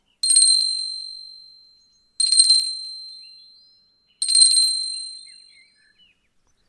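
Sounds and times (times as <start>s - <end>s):
bright metallic Reiki initiation bell struck: 0.4s - 5.6s.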